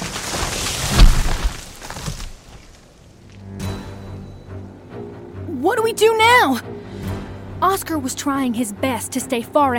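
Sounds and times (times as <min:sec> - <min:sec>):
two halves of an oak tree falling to the earth: 0:00.0 - 0:02.8
oak tree crackling and splintering: 0:00.0 - 0:03.4
speech: 0:05.7 - 0:06.7, 0:07.6 - 0:09.7.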